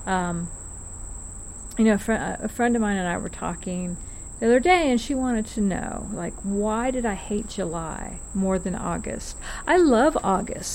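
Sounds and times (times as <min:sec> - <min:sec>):
cicadas buzzing: 0:00.0 - 0:10.7
speech: 0:00.1 - 0:00.6, 0:01.8 - 0:10.7.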